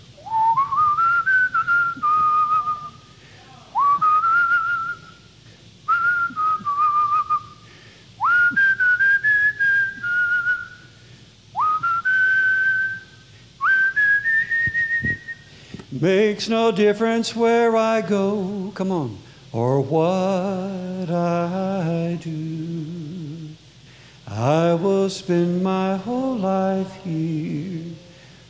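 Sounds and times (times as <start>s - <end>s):
person whistling a tune: 0.2s - 3.0s, 3.8s - 5.2s, 5.9s - 10.9s, 11.6s - 15.5s
speech: 16.0s - 22.4s, 24.4s - 28.0s.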